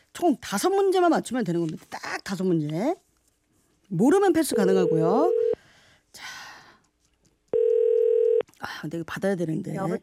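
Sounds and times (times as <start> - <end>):
speech: 0.2 - 3.0, 3.9 - 5.4, 8.8 - 10.0
telephone dial tone while placing a call: 4.6 - 5.6, 7.6 - 8.4.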